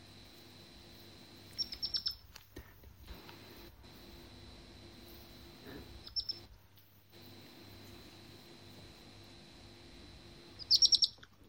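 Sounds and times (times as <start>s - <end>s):
faint steady hum: 0.0s - 11.4s
young animal chirping with birdsong-like calls: 1.5s - 2.2s, 6.0s - 6.5s, 10.6s - 11.3s.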